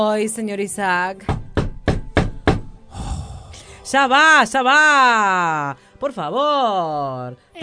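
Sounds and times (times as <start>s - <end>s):
speech: 0.0s - 1.4s, 3.9s - 7.6s
firm knocks on a door: 1.2s - 2.8s.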